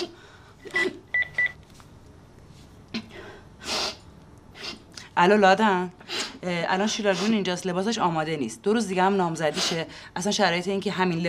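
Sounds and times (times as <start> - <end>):
telephone keypad dialing beeps: 1.1 - 1.6
rustling and handling noises: 1.4 - 2.9
speech: 5.2 - 11.2.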